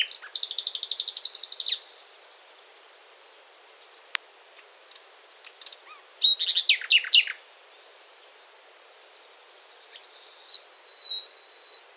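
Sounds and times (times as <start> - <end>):
common nightingale Luscinia megarhynchos singing: 0.0 - 2.2, 4.6 - 11.9.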